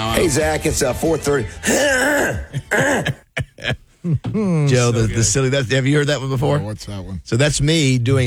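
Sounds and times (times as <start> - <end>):
speech: 0.2 - 8.2
person clearing throat during a voice text: 1.7 - 4.7.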